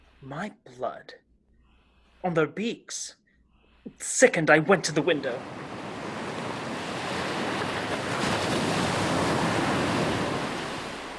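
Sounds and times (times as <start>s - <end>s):
speech: 0.2s - 1.3s, 2.2s - 3.2s, 3.8s - 5.6s
rough sea surf crashing: 5.0s - 11.1s.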